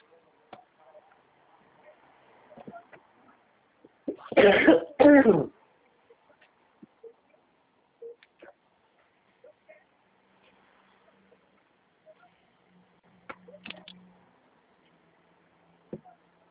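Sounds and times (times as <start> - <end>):
loud harsh coughs: 4.1 - 5.5.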